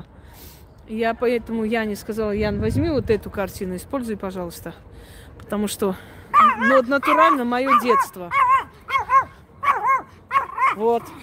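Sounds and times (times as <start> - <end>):
speech: 0.9 - 8.4, 10.8 - 11.2
puppy barking: 6.3 - 11.1.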